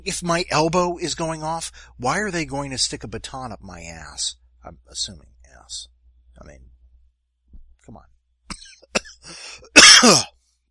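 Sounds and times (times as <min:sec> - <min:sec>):
speech: 0:00.0 - 0:06.7, 0:07.9 - 0:08.1, 0:08.9 - 0:10.4
person coughing: 0:08.5 - 0:10.3.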